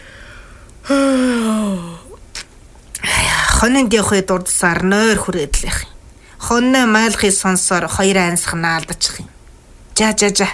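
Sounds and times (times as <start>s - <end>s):
soft breath: 0.0s - 2.2s
voice imitating a yawn: 0.8s - 2.2s
speech: 3.6s - 5.9s, 6.5s - 9.3s, 10.0s - 10.5s.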